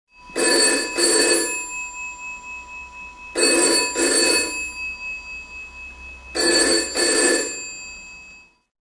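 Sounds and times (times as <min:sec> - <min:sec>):
phone ringing: 0:00.3 - 0:02.7, 0:03.4 - 0:05.5, 0:06.2 - 0:08.6.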